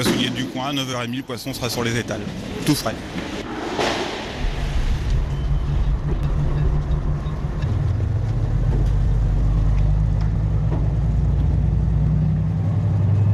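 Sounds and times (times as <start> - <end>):
speech: 0.0 - 3.4
heavy truck engine idling at harbour: 4.6 - 13.3.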